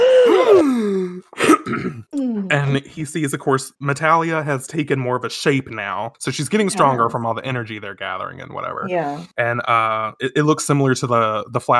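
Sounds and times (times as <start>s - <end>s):
voice imitating a character's startled gasp: 0.0s - 1.2s
speech: 0.3s - 11.7s.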